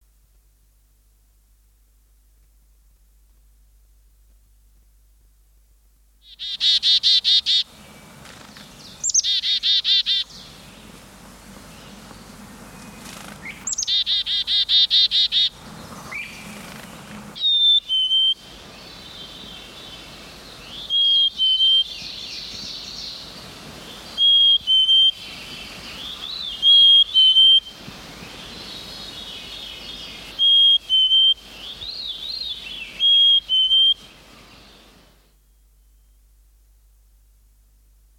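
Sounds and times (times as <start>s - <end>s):
black-capped chickadee calling: 6.2s - 7.7s, 8.8s - 10.6s, 13.4s - 16.6s, 17.4s - 27.8s, 29.3s - 34.8s
songbirds singing: 6.2s - 35.0s.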